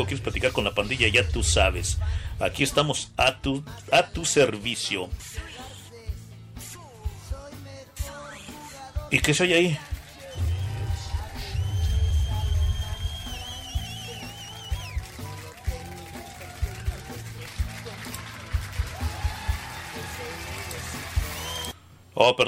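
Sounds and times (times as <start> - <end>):
speech: 0.0 - 5.6, 9.1 - 10.5, 22.2 - 22.4
wavering whistle-like tone: 10.3 - 15.1
rowdy crowd shouting: 10.4 - 17.2, 18.8 - 21.7.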